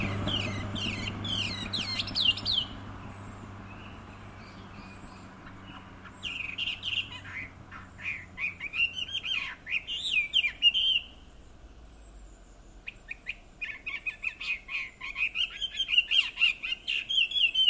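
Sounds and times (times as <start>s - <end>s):
Chinese hwamei Garrulax canorus whistled warbling song: 0.0s - 2.8s, 6.2s - 11.2s, 12.8s - 17.6s.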